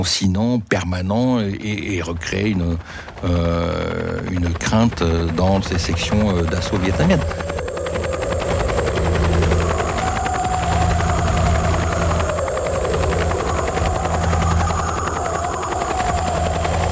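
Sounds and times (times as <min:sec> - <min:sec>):
speech: 0:00.0 - 0:07.5
helicopter rotor chopping: 0:01.0 - 0:16.9.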